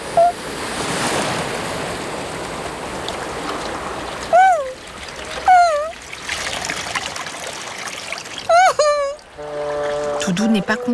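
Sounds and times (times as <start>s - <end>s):
big ocean waves splashing in continuous surf: 0.0s - 10.9s
high wavering vocal cries: 4.3s - 4.8s, 5.4s - 6.0s, 8.5s - 9.2s
speech: 10.3s - 10.9s.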